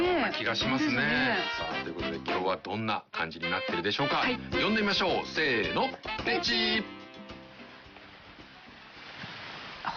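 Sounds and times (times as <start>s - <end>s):
speech: 0.4s - 7.0s
calm sea waves washing on the shore: 7.6s - 9.9s.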